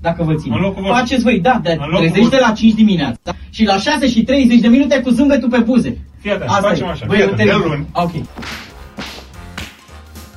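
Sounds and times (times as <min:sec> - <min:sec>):
speech: 0:00.0 - 0:08.7
swishing punch sound effects added in post-production: 0:08.3 - 0:09.8.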